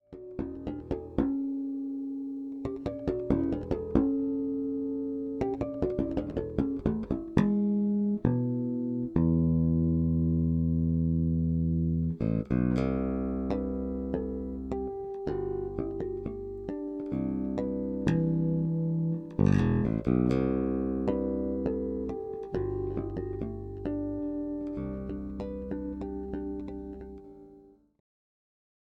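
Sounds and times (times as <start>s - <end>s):
Fender Precision Bass with jazz pickup and active low cut and high boost: 0.1s - 27.6s.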